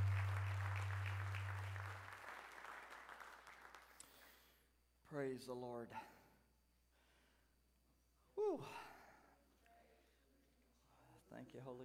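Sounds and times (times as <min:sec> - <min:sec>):
low hum: 0:00.0 - 0:02.0
audience applauding: 0:00.0 - 0:04.3
speech: 0:05.1 - 0:06.2, 0:11.5 - 0:11.8.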